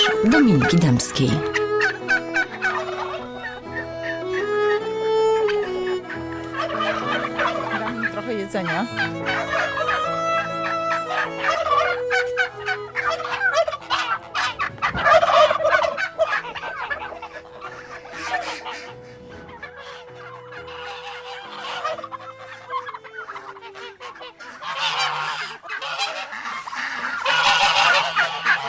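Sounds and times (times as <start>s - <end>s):
turkey hen gobbling and yelping: 0.0s - 4.8s, 5.4s - 28.6s
speech: 0.2s - 1.6s, 8.5s - 9.8s
other fowl: 5.8s - 28.6s.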